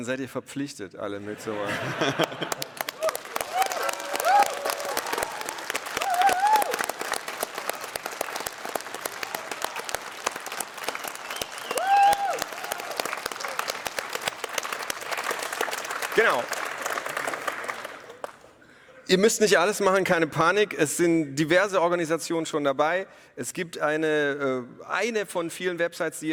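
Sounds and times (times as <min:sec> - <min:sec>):
speech: 0:00.0 - 0:02.7, 0:19.1 - 0:26.3
laughter: 0:01.2 - 0:04.1
crowd applause: 0:01.8 - 0:18.6
whistles or cheers: 0:03.0 - 0:07.0, 0:11.1 - 0:13.2.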